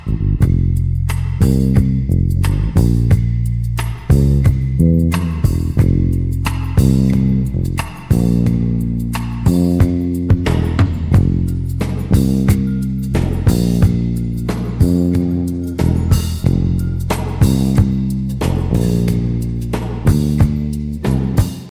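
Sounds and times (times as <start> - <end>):
drums: 0.0 - 21.6
rhythm bass: 0.0 - 21.6.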